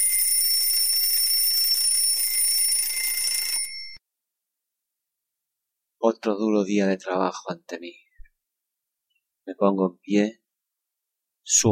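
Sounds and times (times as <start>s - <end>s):
electronic alarm clock ringing: 0.0s - 4.0s
speech: 6.1s - 8.0s, 9.5s - 10.4s, 11.5s - 11.7s.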